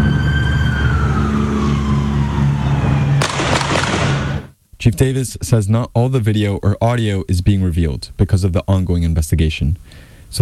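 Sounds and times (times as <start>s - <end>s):
wavering siren-like tone: 0.0s - 3.3s
steady roar of traffic: 0.0s - 4.5s
loud gunshot through a car window: 3.2s - 4.5s
speech: 4.8s - 10.4s.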